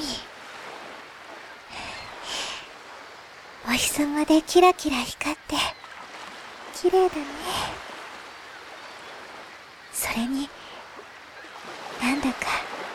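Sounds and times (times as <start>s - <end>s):
gentle ocean waves with a low hiss of surf: 0.0s - 12.9s
speech: 3.6s - 5.8s, 6.8s - 7.9s, 10.0s - 10.6s, 12.0s - 12.7s.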